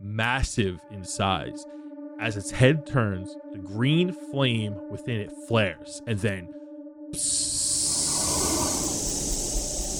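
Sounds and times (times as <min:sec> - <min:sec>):
speech: 0:00.2 - 0:07.9
hiss of shadowy fog pouring from the joints of a suit of full plate armor: 0:07.2 - 0:09.9.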